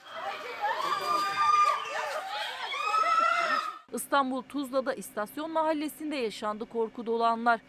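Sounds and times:
crowd of people screaming and shouting in alarm after gas box explosion: 0.0 - 3.8
speech: 4.1 - 7.6.

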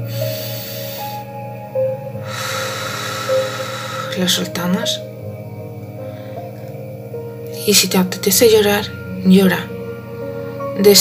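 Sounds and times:
slow deep breath drawn in and released: 0.0 - 4.4, 5.9 - 6.9
faint sustained musical drone: 0.0 - 11.0
speech: 4.2 - 5.1, 7.7 - 9.7, 10.8 - 11.0.

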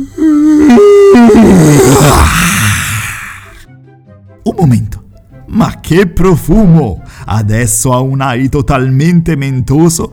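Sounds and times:
person mimicking the huge drawn-out yawn of an ogre: 0.0 - 3.7
speech: 5.9 - 10.1.

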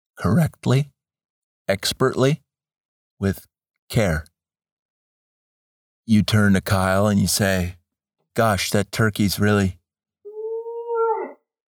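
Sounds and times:
speech: 0.2 - 0.9, 1.7 - 2.4, 3.2 - 4.3, 6.1 - 7.8, 8.4 - 9.8
dog howling: 10.3 - 11.4.

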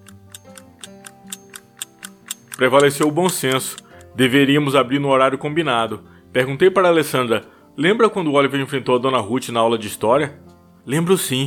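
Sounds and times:
clock ticking: 0.0 - 4.3
speech: 2.6 - 11.4.

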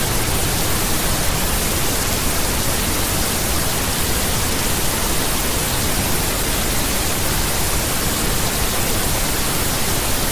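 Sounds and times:
pink noise: 0.0 - 6.8
rain hiss: 0.0 - 10.3.

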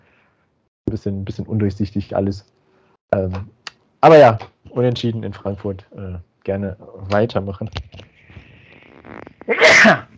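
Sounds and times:
speech: 0.9 - 7.8
person sneezing: 9.5 - 10.1.

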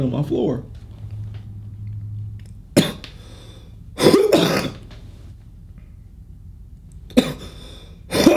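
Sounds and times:
person coughing harshly: 2.8 - 3.1, 4.0 - 4.8, 7.1 - 8.3
throat clearing: 2.8 - 3.2, 4.0 - 4.8, 7.1 - 8.3.

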